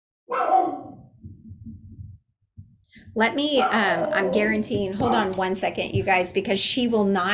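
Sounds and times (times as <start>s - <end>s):
dog barking at the door: 0.3s - 1.0s, 3.6s - 4.4s
low rumbling: 1.0s - 6.0s
speech: 3.1s - 7.3s.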